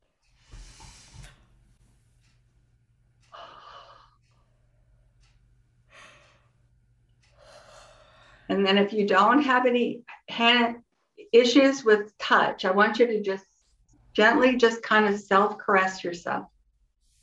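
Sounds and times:
deep audible breaths: 0:00.3 - 0:01.4, 0:03.3 - 0:05.1, 0:05.8 - 0:08.5
speech: 0:08.5 - 0:13.5, 0:14.2 - 0:16.5.

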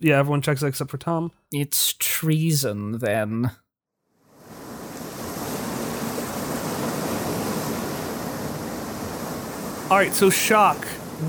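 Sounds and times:
speech: 0:00.0 - 0:03.6, 0:09.9 - 0:11.2
ocean waves crashing on a beach: 0:04.3 - 0:11.2.

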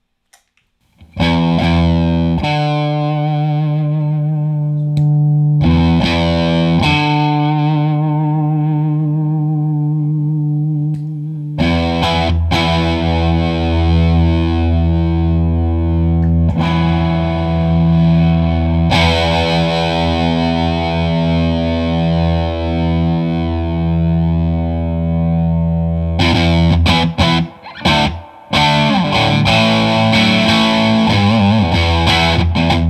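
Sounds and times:
electric guitar chords through germanium fuzz pedal setting: 0:01.0 - 0:32.8.

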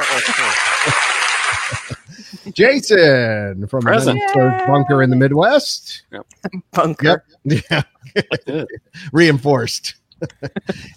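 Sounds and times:
canned crowd laughing sound effect: 0:00.0 - 0:02.6, 0:07.5 - 0:08.8
speech: 0:00.2 - 0:01.1, 0:02.6 - 0:10.9.

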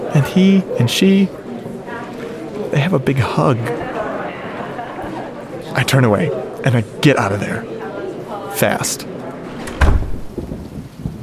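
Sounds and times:
speech: 0:00.4 - 0:01.4, 0:02.7 - 0:03.8, 0:05.8 - 0:07.8, 0:08.6 - 0:09.2
laughter: 0:02.3 - 0:07.0
deep heavy rumble of thunder: 0:09.6 - 0:11.2
steady rain on a street: 0:10.3 - 0:11.2.

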